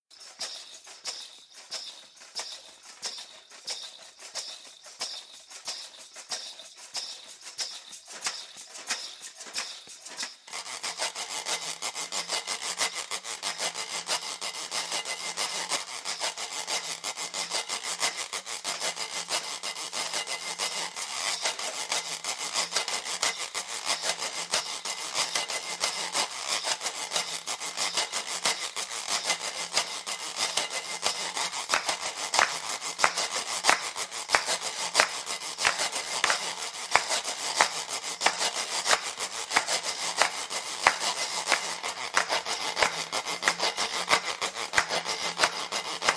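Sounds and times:
swampy groove on small percussion: 0:00.0 - 0:46.1.

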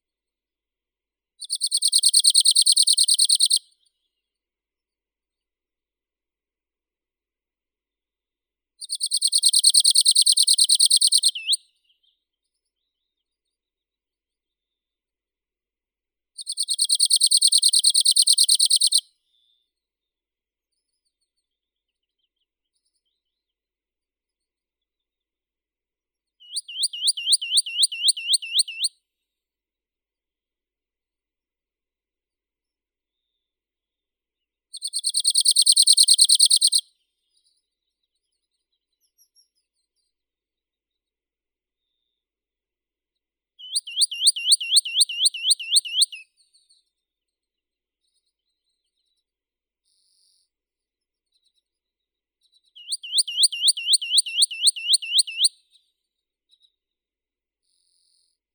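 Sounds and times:
Arctic warbler Phylloscopus borealis singing: 0:01.4 - 0:03.6, 0:08.8 - 0:11.6, 0:16.4 - 0:19.0, 0:26.5 - 0:28.9, 0:34.8 - 0:36.8, 0:43.6 - 0:46.2, 0:52.8 - 0:55.5.

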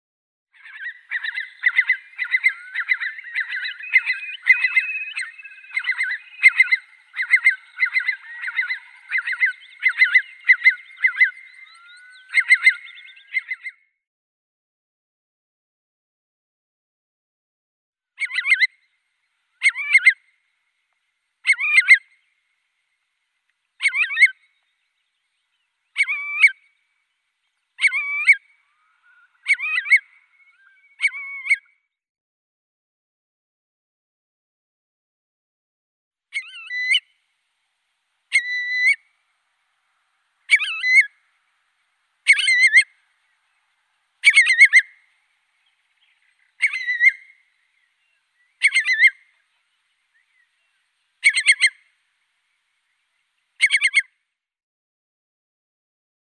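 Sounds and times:
Eurasian curlew Numenius arquata calling: 0:00.6 - 0:13.7, 0:18.2 - 0:20.4, 0:21.4 - 0:22.3, 0:23.8 - 0:31.6, 0:36.4 - 0:37.3, 0:38.2 - 0:52.6, 0:53.6 - 0:54.1.

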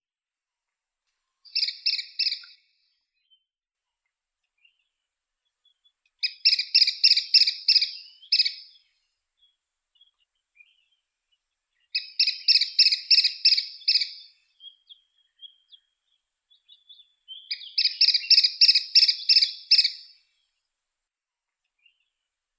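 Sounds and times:
woodpecker Dendrocopos canicapillus: 0:01.5 - 0:02.6, 0:06.2 - 0:08.8, 0:12.0 - 0:14.4, 0:16.7 - 0:20.2.

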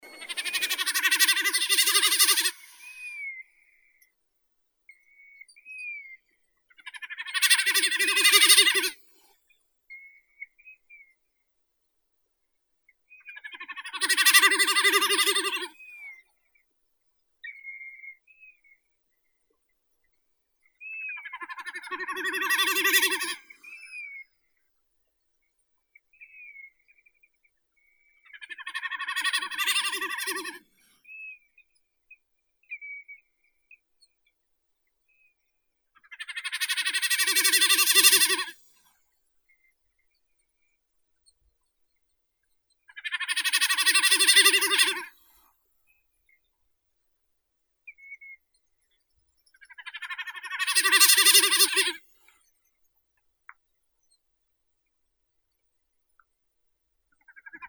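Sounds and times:
common snipe Gallinago gallinago calling: 0:00.0 - 0:03.2, 0:07.3 - 0:09.0, 0:13.7 - 0:15.7, 0:21.2 - 0:23.4, 0:28.6 - 0:30.6, 0:36.1 - 0:38.5, 0:43.0 - 0:45.1, 0:49.8 - 0:52.0.

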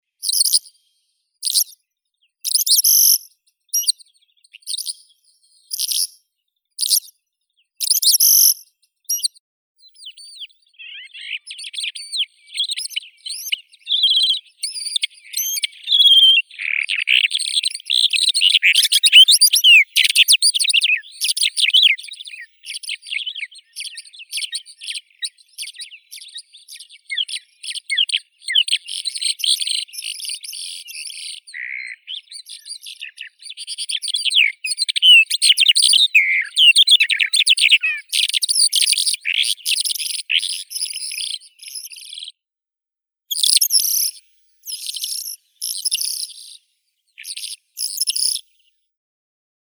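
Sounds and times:
Melanocorypha calandra calandra lark singing: 0:02.4 - 0:04.0, 0:07.8 - 0:42.3, 0:43.3 - 0:46.6, 0:47.2 - 0:48.5.

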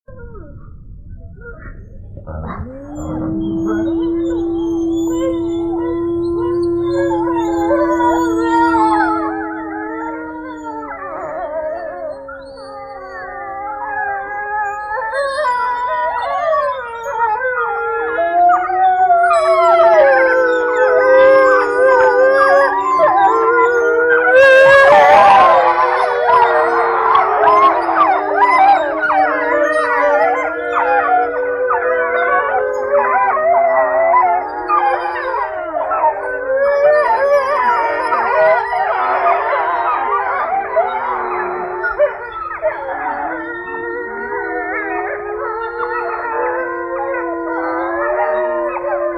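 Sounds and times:
grey wolf Canis lupus: 0:00.1 - 0:49.1.

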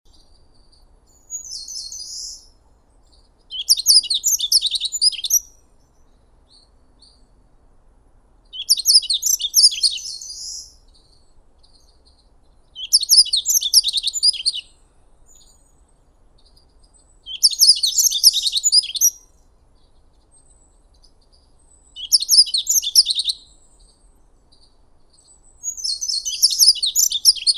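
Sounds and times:
Emberiza elegans calling: 0:03.5 - 0:05.5, 0:08.6 - 0:10.7, 0:12.8 - 0:14.7, 0:17.3 - 0:19.2, 0:22.0 - 0:23.4, 0:25.6 - 0:27.5.

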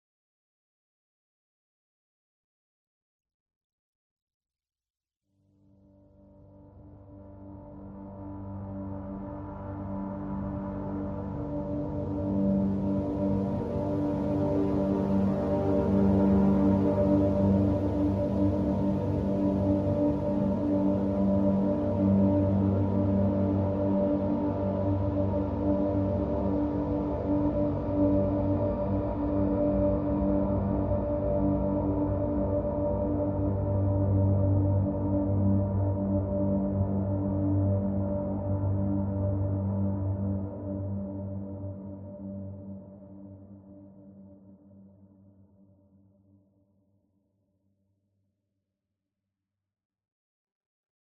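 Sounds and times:
ambience: 0:06.2 - 0:44.7.

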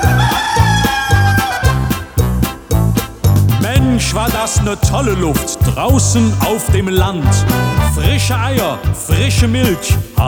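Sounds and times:
rooster crowing: 0:00.0 - 0:02.1
musical beat with thumping bass pulses: 0:00.0 - 0:10.2
speech: 0:04.1 - 0:10.2.

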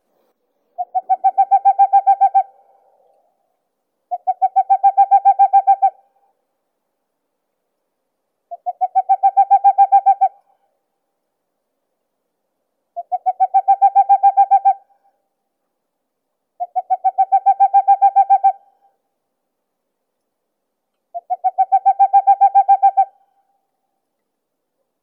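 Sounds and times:
Aegolius funereus calling: 0:00.7 - 0:03.3, 0:04.1 - 0:06.1, 0:08.5 - 0:10.6, 0:13.0 - 0:15.0, 0:16.6 - 0:19.0, 0:21.1 - 0:23.3.

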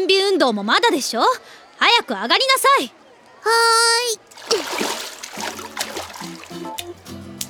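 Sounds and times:
speech: 0:00.0 - 0:05.0
water splashing and churning in a swimming pool: 0:04.2 - 0:07.0.

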